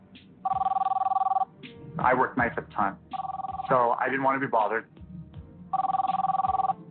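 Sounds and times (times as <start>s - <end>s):
cell phone ringing with warbling electronic trill: 0.4s - 1.5s, 3.1s - 4.0s, 5.7s - 6.8s
speech: 2.0s - 3.0s, 3.7s - 5.0s.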